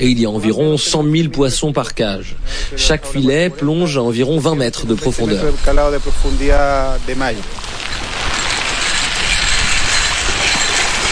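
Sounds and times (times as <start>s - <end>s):
speech: 0.0s - 8.0s
salmon farm metal feed tubes spinning at the water surface among sea cages: 4.8s - 11.0s.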